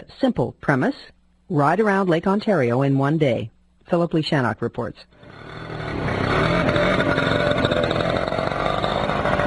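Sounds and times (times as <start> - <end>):
speech: 0.1 - 5.8
cluster of small scooter engines idling and revving: 5.2 - 9.4.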